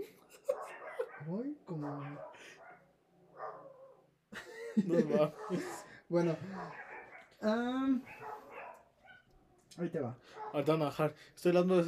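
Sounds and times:
laughter: 0.0 - 1.2, 4.3 - 6.8
dogs barking outside: 0.4 - 4.1, 5.0 - 9.4, 10.2 - 10.8
speech: 1.2 - 2.6, 4.8 - 6.8, 7.4 - 8.4, 9.8 - 11.8.

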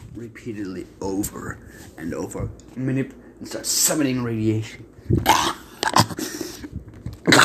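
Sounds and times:
speech: 0.2 - 6.4
harsh wet coughing and choking: 5.2 - 6.7, 7.3 - 7.4.

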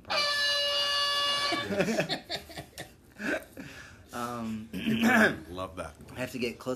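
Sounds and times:
loud brassy air horn blast: 0.0 - 1.8
laughter: 1.5 - 3.0
speech: 1.7 - 2.6, 4.3 - 6.7.

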